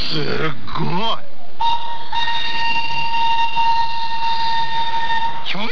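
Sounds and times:
speech: 0.1 - 2.3
railway train high whistle-like tone: 1.6 - 5.7.

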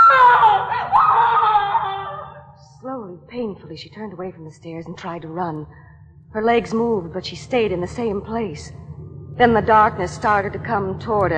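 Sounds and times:
woman screaming: 0.0 - 2.5
speech: 3.6 - 8.8, 9.4 - 11.3.

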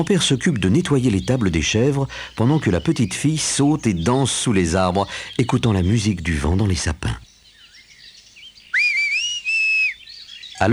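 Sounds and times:
speech: 0.0 - 7.3
shrill whistle blown by a person gathering goats on a mountain: 8.7 - 10.3.

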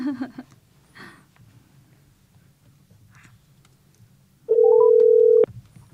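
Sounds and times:
telephone ringback tone of a call connecting: 4.5 - 5.5.

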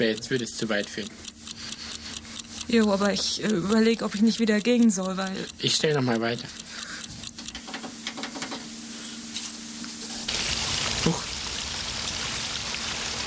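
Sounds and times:
speech: 0.0 - 1.3, 2.7 - 6.8
faint tonal hum: 0.0 - 10.3
water flowing down a sloped surface: 10.3 - 13.2.

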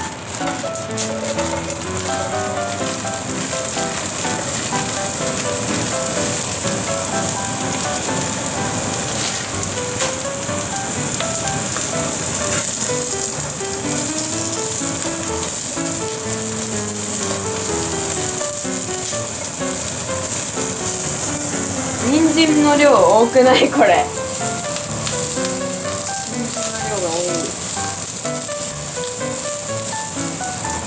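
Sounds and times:
cabbage mix sizzling in a frying pan for chocolate yakisoba: 0.0 - 30.8
music playing: 0.0 - 30.8
speech: 22.8 - 24.2.

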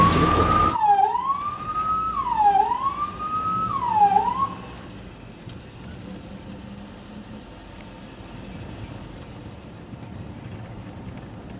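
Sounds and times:
ambulance siren wailing as the ambulance speeds along: 0.0 - 4.8
low rumble of traffic: 0.0 - 11.5.

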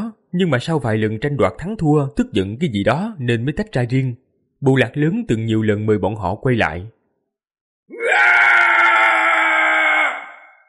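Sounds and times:
speech: 0.3 - 7.0
long scream across a mountain range: 8.0 - 10.6.

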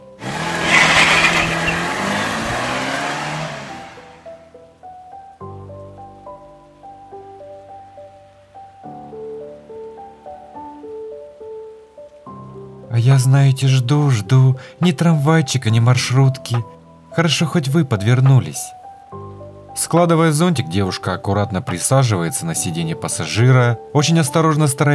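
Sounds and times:
taxi pulling away: 0.0 - 4.5
soft sparse music: 0.0 - 24.9
speech: 13.0 - 18.8, 19.8 - 24.9.

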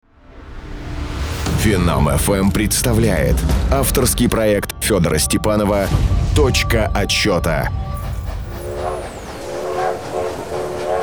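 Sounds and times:
passing trains rumbling and clattering in a railroad town in Minnesota: 0.1 - 11.0
speech: 1.6 - 7.9
high whistle-like sweep: 4.0 - 11.0
long wavering train horn blasts: 6.0 - 11.0.

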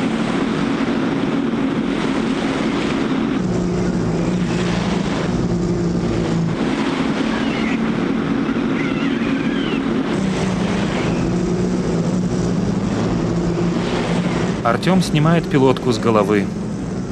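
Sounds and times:
German open-top Mercedes staff car driving over a long wooden bridge on piles: 0.0 - 17.1
motorcycle driving over a long wooden bridge on piles: 0.0 - 17.1
speech: 14.8 - 16.6.

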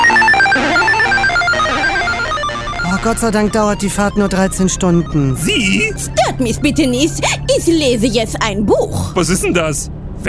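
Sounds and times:
chiptune video game theme from a mobile phone on a coach bus: 0.0 - 6.6
speech: 3.0 - 10.2.

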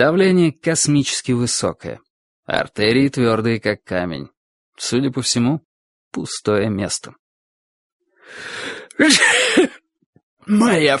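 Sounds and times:
speech: 0.0 - 7.2, 8.3 - 9.8, 10.5 - 10.9
long breathy drawn-in gasp before a sneeze: 8.2 - 9.8
police station chief sneezing: 8.9 - 9.8.

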